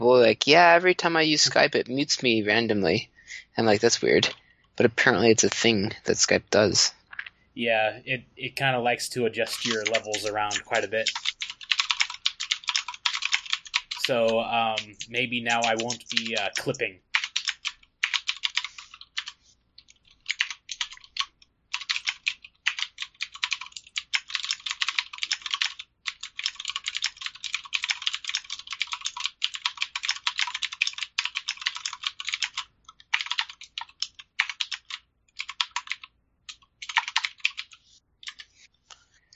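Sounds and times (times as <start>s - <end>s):
speech: 0.3s - 7.0s, 7.6s - 11.2s, 14.1s - 17.1s
typing on a mechanical keyboard: 9.5s - 38.5s.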